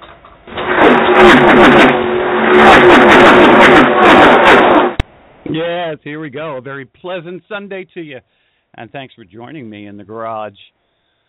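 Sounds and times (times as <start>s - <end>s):
race car engine cranking, firing up and revving: 0.5s - 5.0s
speech: 1.2s - 4.6s, 5.6s - 10.8s.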